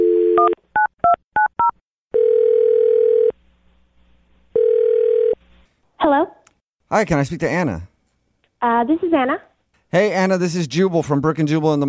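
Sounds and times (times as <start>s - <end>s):
long steady telephone ringing tones: 0.0s - 0.9s, 1.6s - 3.3s, 4.6s - 5.4s
speech: 6.9s - 7.9s, 8.6s - 11.8s.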